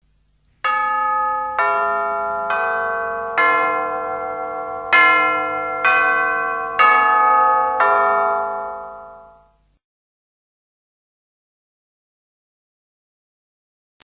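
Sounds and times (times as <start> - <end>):
tubular bells: 0.7 - 9.6.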